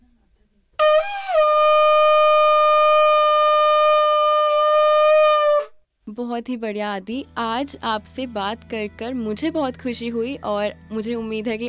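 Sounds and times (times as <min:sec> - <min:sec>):
conch shell blown in a long steady note: 0:00.8 - 0:05.8
speech: 0:06.4 - 0:11.6.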